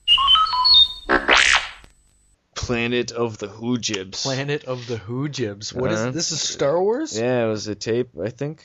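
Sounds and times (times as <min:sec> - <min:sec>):
electronic robot droid beeps and warbling chirps: 0:00.0 - 0:01.8
speech: 0:02.7 - 0:08.6.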